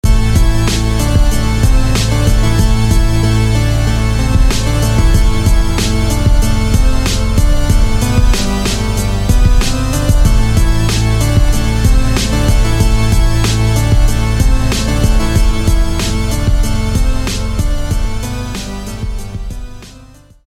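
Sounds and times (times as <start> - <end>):
chaotic synthesizer sound: 0.0 - 20.4.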